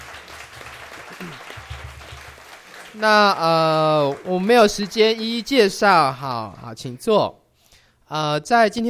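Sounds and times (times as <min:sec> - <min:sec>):
audience clapping in welcome: 0:00.0 - 0:05.8
speech: 0:01.2 - 0:01.5, 0:03.0 - 0:07.4, 0:08.1 - 0:08.8.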